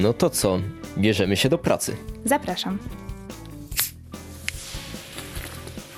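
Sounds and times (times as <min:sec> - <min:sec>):
speech: 0:00.0 - 0:03.1
sparkling water bottle opening hiss: 0:03.7 - 0:05.9
sparkling water fizzing for pancake batter: 0:03.8 - 0:05.9.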